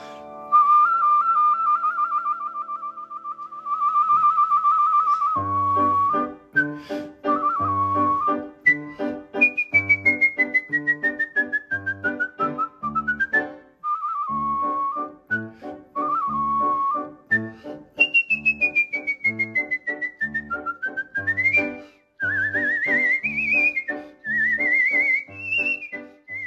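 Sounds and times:
young man whistling a bright agile opera melody: 0.5 - 26.4.

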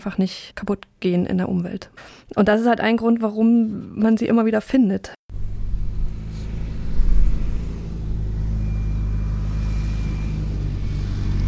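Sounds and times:
speech: 0.0 - 5.2
farmer's tractor driving slowly on a paved farm road: 5.3 - 11.4.

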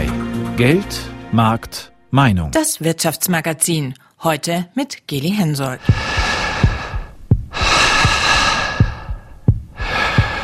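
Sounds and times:
speech: 0.6 - 6.3
airy human breathing in and out: 5.8 - 10.4
steady low thumping heartbeat: 5.8 - 10.4.

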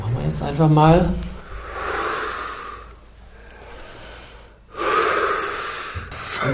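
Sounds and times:
speech: 0.4 - 1.3
group breathing deeply together in a closing ritual: 1.3 - 6.5.

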